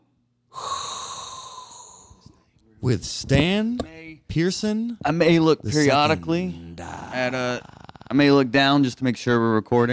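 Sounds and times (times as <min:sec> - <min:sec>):
deep breath inhaled: 0:00.5 - 0:02.4
speech: 0:02.8 - 0:09.9.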